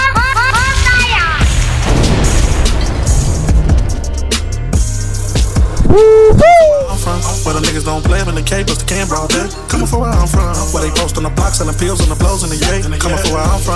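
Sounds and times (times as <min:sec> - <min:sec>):
booming low thuds: 0:00.1 - 0:06.7
bomb explosion sound effect: 0:00.2 - 0:05.9
shouted vocal snippets: 0:05.9 - 0:06.9
speech: 0:08.3 - 0:13.7.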